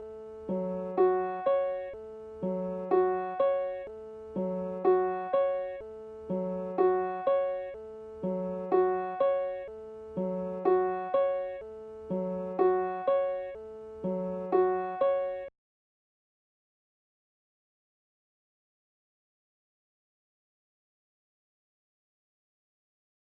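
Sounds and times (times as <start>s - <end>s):
dry piano melody loop in F sharp minor: 0.0s - 15.5s.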